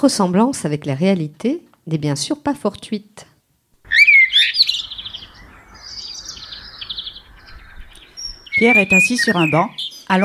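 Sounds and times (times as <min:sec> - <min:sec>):
speech: 0:00.0 - 0:03.3, 0:08.6 - 0:10.2
birds singing: 0:03.8 - 0:10.2.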